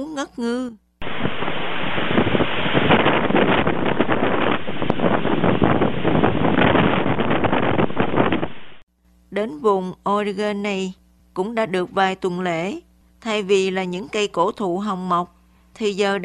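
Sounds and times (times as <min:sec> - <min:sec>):
speech: 0:00.0 - 0:02.2, 0:09.4 - 0:16.2
faint wash of surf or water: 0:01.0 - 0:08.8
strong sea wind buffeting microphone on rainless day beside rocky sea slopes: 0:01.0 - 0:08.8.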